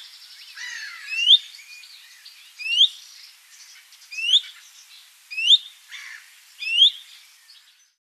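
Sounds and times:
common chaffinch calls: 0.0s - 7.7s.

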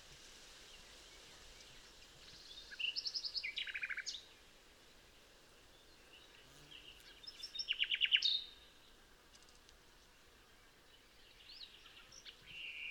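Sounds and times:
background hiss: 0.0s - 12.8s
common nightingale Luscinia megarhynchos song: 0.6s - 4.5s, 5.7s - 9.0s, 10.5s - 12.8s.

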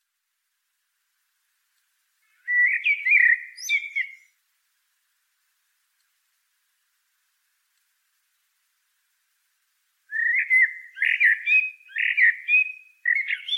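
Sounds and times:
common blackbird Turdus merula singing: 2.2s - 4.4s, 10.1s - 13.5s.

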